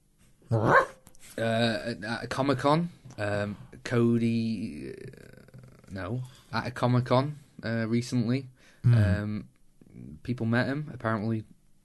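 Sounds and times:
man imitating dog barks and yelps: 0:00.5 - 0:00.9, 0:08.9 - 0:09.2
speech: 0:01.4 - 0:05.3, 0:05.9 - 0:11.5.

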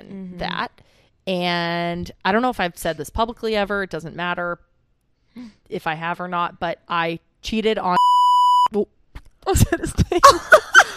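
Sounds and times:
speech: 0:00.0 - 0:04.7, 0:05.4 - 0:08.0, 0:08.7 - 0:10.6
censor bleep tone covering a name: 0:08.0 - 0:08.7.

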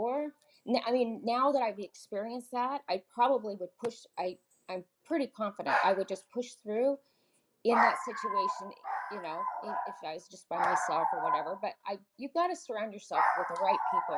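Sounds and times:
speech: 0:00.3 - 0:14.1
dog barking: 0:05.7 - 0:06.0, 0:07.7 - 0:10.0, 0:10.6 - 0:11.5, 0:13.2 - 0:14.1.

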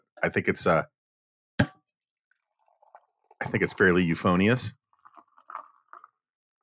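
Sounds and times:
speech: 0:00.2 - 0:00.9, 0:03.4 - 0:04.8
coffee pouring into a cup: 0:02.4 - 0:06.3.

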